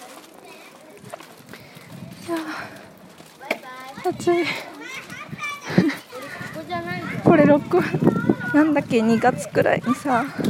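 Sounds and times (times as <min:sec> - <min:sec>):
elementary schoolchildren chattering outdoors on their way home from school: 0:00.0 - 0:10.4
speech: 0:04.0 - 0:04.7, 0:07.3 - 0:10.4
child shouting: 0:04.8 - 0:07.3, 0:07.9 - 0:09.3.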